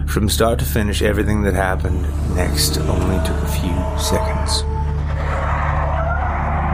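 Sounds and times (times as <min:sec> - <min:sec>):
speech: 0:00.1 - 0:04.7
compact car engine rumbling: 0:00.5 - 0:06.1
compact car tires hissing and squealing on black ice: 0:01.6 - 0:06.6.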